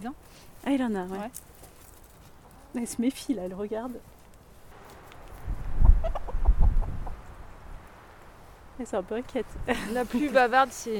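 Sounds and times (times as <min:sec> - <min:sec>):
speech: 0:00.0 - 0:01.6, 0:02.7 - 0:04.1, 0:08.8 - 0:10.9
hens clucking: 0:04.9 - 0:07.4.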